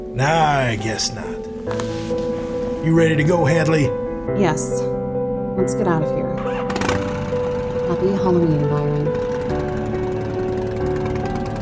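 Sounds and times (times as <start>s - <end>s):
speech: 0.0s - 5.0s, 5.6s - 7.1s, 7.9s - 9.6s
motorbike engine droning as the bike races off: 6.4s - 11.6s.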